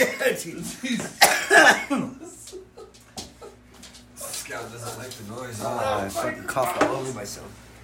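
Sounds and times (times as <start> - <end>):
harsh coughing: 0.0 - 0.4, 1.0 - 2.3
speech: 0.0 - 2.4, 4.5 - 7.7
laughter: 0.0 - 4.0
low hum: 0.0 - 7.8.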